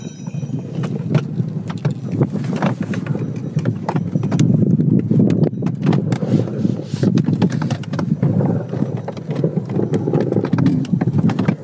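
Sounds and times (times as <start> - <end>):
sleigh bells jingling: 0.0 - 1.2
horse hooves clip-clopping pulling an open sleigh: 0.0 - 11.6
low rumble of open sleigh runners: 0.0 - 11.6
wind buffeting the microphone: 0.0 - 11.6.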